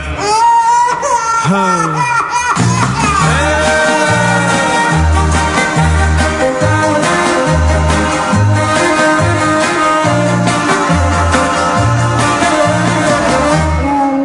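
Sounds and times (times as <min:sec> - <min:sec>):
wailing baby-like cry with sliding pitch: 0:00.2 - 0:04.9
speech: 0:01.5 - 0:02.2
upbeat song with steady beat and bass: 0:01.8 - 0:14.1.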